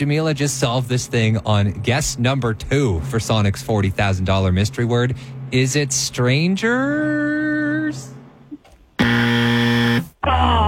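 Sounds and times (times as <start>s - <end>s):
speech: 0.0s - 8.2s, 10.2s - 10.6s
game show buzzer: 9.0s - 10.2s.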